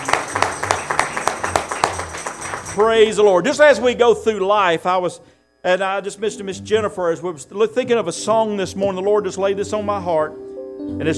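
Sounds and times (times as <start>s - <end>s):
church congregation clapping hands in praise: 0.0s - 3.8s
speech: 2.8s - 11.1s.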